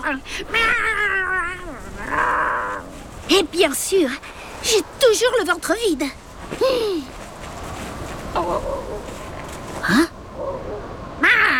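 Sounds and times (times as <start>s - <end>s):
speech: 0.0s - 1.0s, 2.1s - 2.5s, 3.3s - 7.2s, 8.4s - 9.1s, 9.8s - 10.1s
cat yowling higher up on a mountain: 0.5s - 2.8s.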